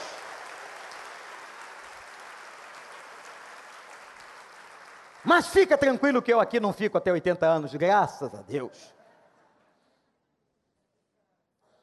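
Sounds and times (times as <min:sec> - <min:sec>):
audience applauding to glorify God: 0:00.0 - 0:06.6
speech: 0:05.2 - 0:09.0.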